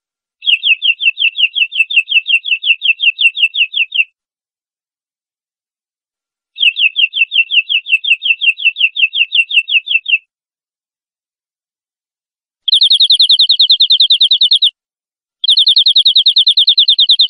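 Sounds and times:
cage canary trilling training song: 0.4 - 4.2, 6.6 - 10.3, 12.7 - 14.8, 15.4 - 17.2.

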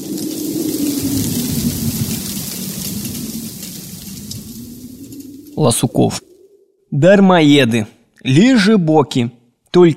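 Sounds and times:
heavy rain outside in the yard: 0.0 - 6.2
howling wind outside in the yard: 0.0 - 7.5
speech: 5.6 - 6.3, 6.9 - 9.9.

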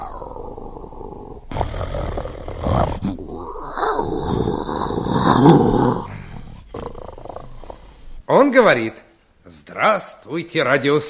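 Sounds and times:
lion growling: 0.0 - 8.2
speech: 8.5 - 11.0.

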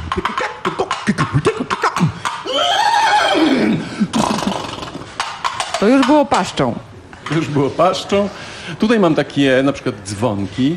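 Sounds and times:
rhythmic horse hoof beats: 0.0 - 6.4
horse whinnying: 2.4 - 5.2
speech: 5.8 - 10.7.

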